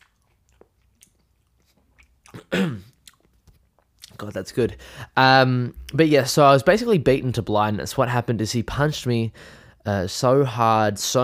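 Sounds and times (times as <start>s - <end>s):
crunching and chewing of a crisp apple: 0.0s - 4.4s
speech: 2.4s - 2.9s, 4.2s - 11.2s.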